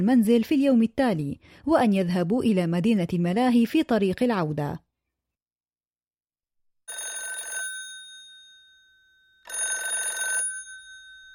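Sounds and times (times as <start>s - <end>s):
speech: 0.0s - 4.8s
telephone ringing with electronic trill: 6.9s - 11.3s.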